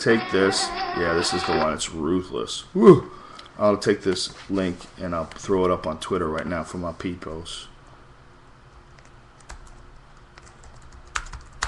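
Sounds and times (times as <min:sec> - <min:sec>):
speech: 0:00.0 - 0:07.7
quiet hiss: 0:00.0 - 0:09.4
fingers typing on a computer keyboard: 0:09.0 - 0:11.6.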